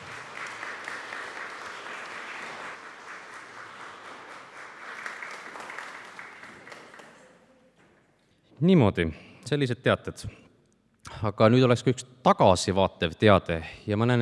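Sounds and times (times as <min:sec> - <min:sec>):
church audience applauding: 0:00.0 - 0:07.5
speech: 0:08.6 - 0:10.4, 0:11.2 - 0:14.1.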